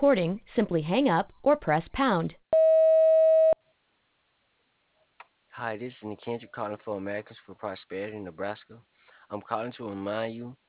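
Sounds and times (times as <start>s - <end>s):
speech: 0.0s - 2.4s, 5.6s - 10.6s
voicemail beep marking the start of message recording: 2.6s - 3.6s.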